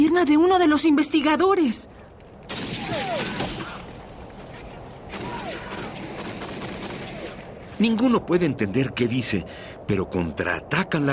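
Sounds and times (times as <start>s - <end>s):
speech: 0.2s - 2.1s, 7.8s - 11.1s
gunshots as a man fires at a dog in the snow: 2.5s - 3.9s, 5.1s - 7.6s.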